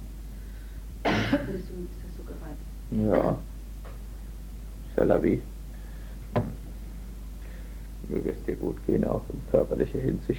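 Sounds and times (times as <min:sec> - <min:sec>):
low hum: 0:00.0 - 0:10.3
harsh cough with rough throaty rasp: 0:01.0 - 0:01.6
speech: 0:01.3 - 0:03.5, 0:05.0 - 0:05.5, 0:08.1 - 0:10.3.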